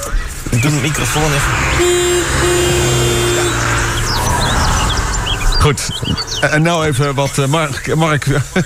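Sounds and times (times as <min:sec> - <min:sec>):
traffic and engine noise: 0:00.0 - 0:08.6
speech: 0:00.6 - 0:03.1, 0:05.6 - 0:08.6
car horn honking loudly: 0:00.6 - 0:06.6.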